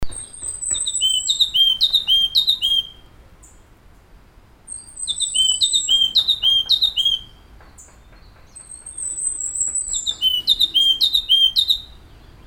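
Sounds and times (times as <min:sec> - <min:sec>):
yellow-cheeked tit subspecies rex calling: 0:00.0 - 0:03.1, 0:04.7 - 0:07.4, 0:08.6 - 0:12.0.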